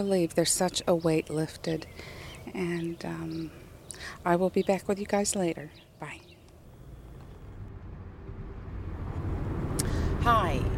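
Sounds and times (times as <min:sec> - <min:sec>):
speech: 0:00.0 - 0:06.2, 0:10.2 - 0:10.7
car interior road and engine drone while driving: 0:06.6 - 0:10.7.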